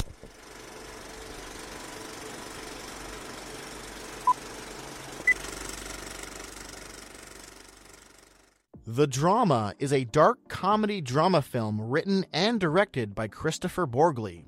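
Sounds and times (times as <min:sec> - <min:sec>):
film projector warming up with reels spinning: 0:00.0 - 0:08.6
speech: 0:08.9 - 0:14.4.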